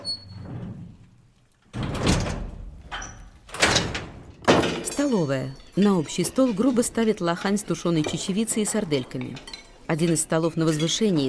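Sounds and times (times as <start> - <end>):
heavy cell door pushed shut: 0.0 - 4.9
metal lock being thrown: 1.7 - 5.2
speech: 5.0 - 11.2.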